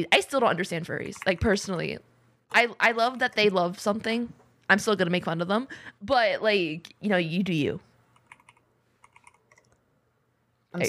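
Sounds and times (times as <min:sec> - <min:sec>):
speech: 0:00.0 - 0:07.9
typing on a computer keyboard: 0:08.2 - 0:09.8.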